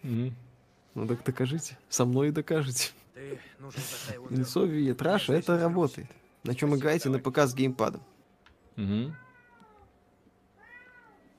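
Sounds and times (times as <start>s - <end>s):
speech: 0.0s - 8.1s, 8.8s - 9.2s
cat that has just woken meowing: 9.1s - 9.9s, 10.6s - 11.3s.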